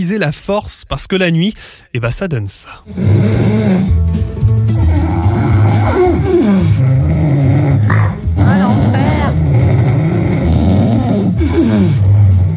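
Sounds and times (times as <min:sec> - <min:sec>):
speech: 0:00.0 - 0:04.0
loud heavy snoring: 0:02.9 - 0:12.5.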